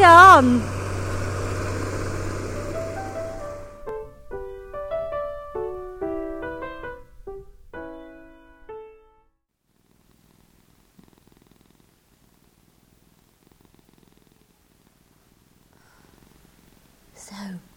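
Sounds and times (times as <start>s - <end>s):
speech: 0.0s - 0.8s
tractor engine ploughing a field: 0.0s - 6.6s
cat purring while asleep: 0.0s - 9.1s, 9.7s - 17.7s.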